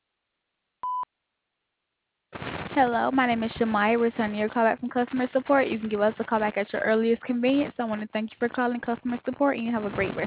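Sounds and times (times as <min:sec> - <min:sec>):
mid-pitched electronic voicemail beep: 0:00.8 - 0:01.1
speech: 0:02.8 - 0:10.2.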